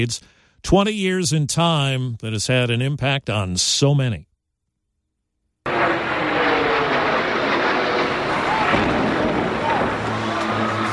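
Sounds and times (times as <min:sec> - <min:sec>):
speech: 0:00.0 - 0:04.3
jet engine roar: 0:05.7 - 0:10.9.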